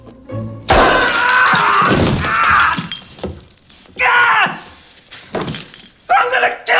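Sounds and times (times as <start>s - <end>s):
glass Christmas ornaments crunching and shattering underfoot: 0.7s - 4.0s, 5.3s - 6.1s.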